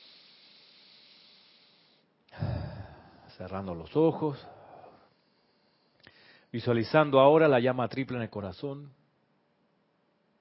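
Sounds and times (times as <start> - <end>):
deep breath drawn in and released: 0.0 - 3.4, 4.3 - 6.5
speech: 3.4 - 4.6, 6.5 - 9.0.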